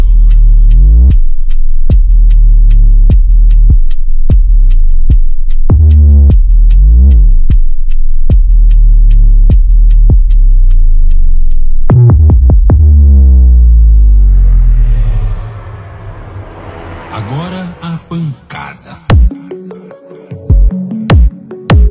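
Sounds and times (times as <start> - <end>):
subwoofer bass test tone throbbing: 0.0 - 16.9, 19.1 - 19.3.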